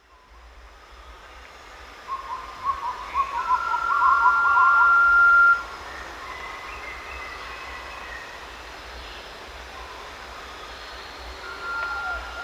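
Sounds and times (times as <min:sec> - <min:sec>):
blue-banded pitta even whistle: 0:02.1 - 0:05.6, 0:11.4 - 0:12.4.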